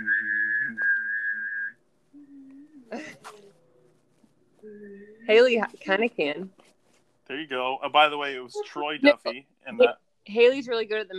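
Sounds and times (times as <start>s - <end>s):
high whistled note: 0.0s - 1.7s
speech: 5.3s - 6.6s, 7.3s - 11.1s.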